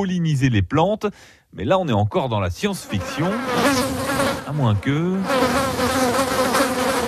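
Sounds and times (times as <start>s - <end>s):
speech: 0.0s - 6.0s
bee buzzing: 2.8s - 7.0s.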